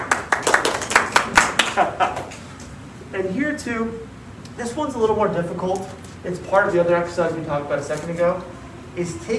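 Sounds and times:
single person clapping hands: 0.0s - 2.4s
faint room noise: 0.0s - 9.3s
speech: 3.2s - 9.3s.

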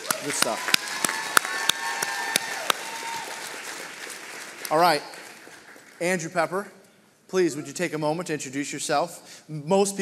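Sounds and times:
scattered applause from a small audience: 0.0s - 6.0s
speech: 0.2s - 0.8s, 4.7s - 5.2s, 6.0s - 10.0s.

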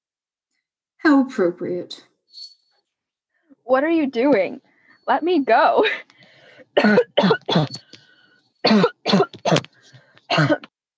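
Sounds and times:
speech: 1.0s - 2.1s, 3.7s - 6.1s, 6.8s - 7.8s, 8.6s - 9.2s, 10.4s - 10.7s
harsh coughing: 6.7s - 7.9s, 8.6s - 10.7s.

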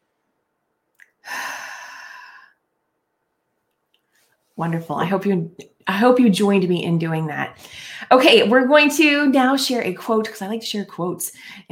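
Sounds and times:
deep breath in during a calming breathing exercise: 1.2s - 2.6s
speech: 4.6s - 11.7s.

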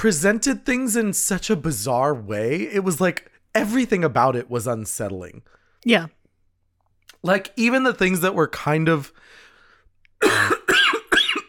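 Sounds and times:
speech: 0.0s - 6.2s, 7.2s - 9.4s
person coughing harshly: 10.2s - 11.4s.

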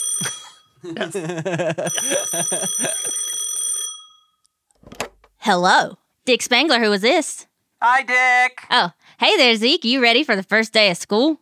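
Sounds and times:
phone ringing with a shrill electronic tone: 0.0s - 0.8s, 1.8s - 4.5s
laughter: 0.2s - 3.3s
speech: 0.8s - 3.4s, 5.5s - 11.4s.

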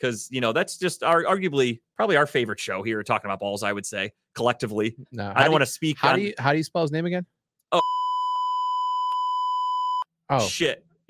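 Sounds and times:
speech: 0.0s - 8.0s, 10.3s - 11.0s
clipped voice fragment: 5.2s - 6.4s
censor bleep tone: 7.8s - 10.1s.

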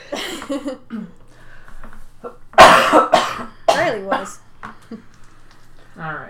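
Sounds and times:
speech: 0.5s - 1.1s, 3.9s - 5.1s
person sneezing: 2.2s - 4.4s.

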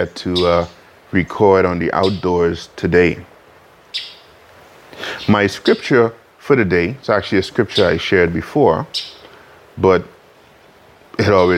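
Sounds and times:
bird chirp outdoors out back: 0.0s - 2.7s, 3.8s - 6.2s, 7.1s - 10.1s, 11.2s - 11.5s
speech: 0.0s - 3.3s, 3.9s - 4.2s, 5.0s - 9.2s, 9.8s - 10.1s, 11.2s - 11.5s
steady quiet noise: 0.0s - 11.5s.

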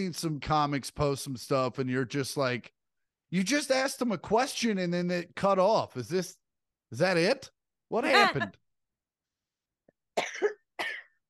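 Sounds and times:
speech: 0.0s - 8.6s
person coughing after smoking: 10.2s - 11.2s.

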